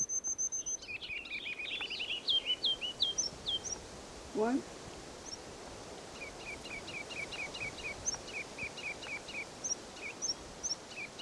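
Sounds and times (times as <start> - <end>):
ruby-crowned kinglet singing: 0.0 - 3.8, 6.2 - 11.1
low hiss: 0.0 - 11.1
speech: 4.4 - 4.8.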